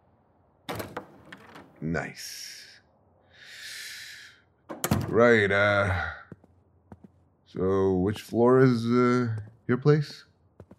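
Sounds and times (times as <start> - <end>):
door clicks and rattles as it swings: 0.7 - 1.8, 4.7 - 5.2
speech: 1.8 - 2.6, 5.1 - 6.2, 7.5 - 10.3
door latch and handle clunk: 4.7 - 5.2.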